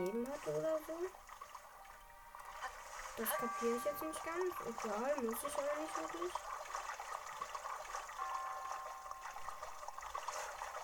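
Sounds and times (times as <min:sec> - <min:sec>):
speech: 0:00.0 - 0:01.3, 0:03.2 - 0:06.5
steps wading through shallow water: 0:00.0 - 0:10.8.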